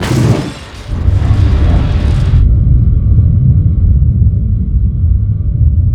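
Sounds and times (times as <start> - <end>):
explosion with disjointed textures: 0.0 - 5.8.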